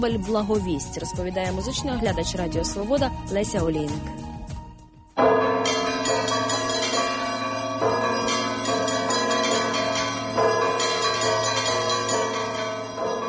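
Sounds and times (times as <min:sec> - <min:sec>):
speech: 0:00.0 - 0:04.3
church bells ringing an Easter peal: 0:05.2 - 0:13.2.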